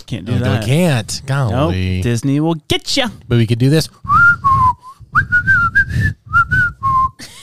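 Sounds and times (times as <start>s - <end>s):
speech: 0.1s - 6.2s
person whistling a bouncy cartoon tune: 4.1s - 7.2s.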